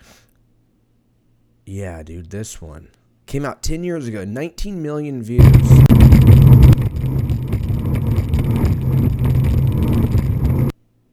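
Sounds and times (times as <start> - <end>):
speech: 1.7 - 5.8
powerful speedboat engine roaring on a boat carrying seven people: 5.4 - 10.7.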